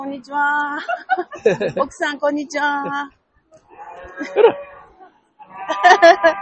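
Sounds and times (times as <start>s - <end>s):
speech: 0.0s - 3.2s, 4.2s - 4.7s, 5.7s - 6.4s
laughter: 0.4s - 3.1s, 3.9s - 6.4s
cows mooing in a barn: 3.6s - 6.4s.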